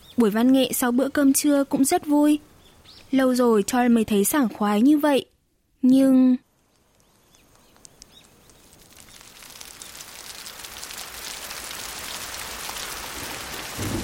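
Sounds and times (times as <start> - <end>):
speech: 0.2 - 2.5, 3.1 - 6.4
heavy rain pouring down: 7.5 - 14.0.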